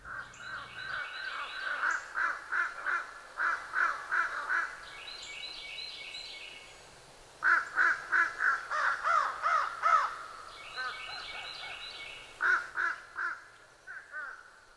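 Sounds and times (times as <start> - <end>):
fish crows cawing: 0.0 - 0.4, 1.2 - 4.8, 7.4 - 11.0, 12.4 - 14.6.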